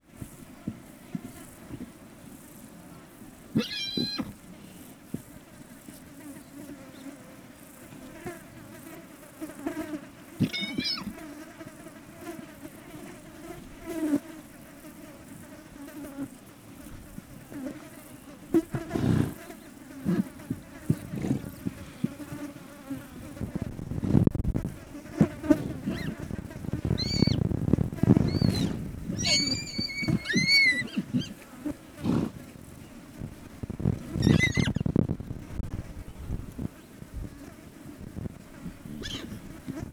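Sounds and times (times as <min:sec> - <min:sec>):
wind in Hortobágy National Park: 0:00.0 - 0:39.9
wild horse in Hortobágy National Park: 0:03.3 - 0:06.1, 0:10.4 - 0:11.4, 0:16.9 - 0:39.9.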